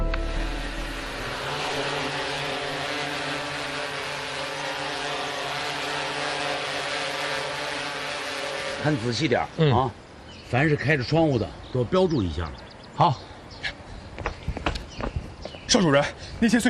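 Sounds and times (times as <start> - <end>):
drone propellers buzzing in flight: 0.0 - 10.3
speech: 8.8 - 13.3, 15.7 - 16.6.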